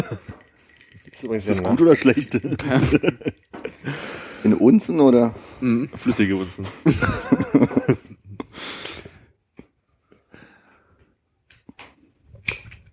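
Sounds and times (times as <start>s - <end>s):
laughter: 0.0s - 0.4s, 2.1s - 3.9s, 6.6s - 8.5s
ice cubes clinking in a drinking glass: 0.0s - 3.4s
speech: 1.2s - 7.8s.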